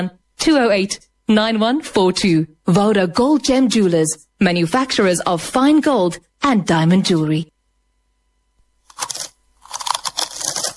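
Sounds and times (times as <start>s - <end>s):
speech: 0.0s - 7.5s
potato chips being eaten: 8.8s - 10.7s.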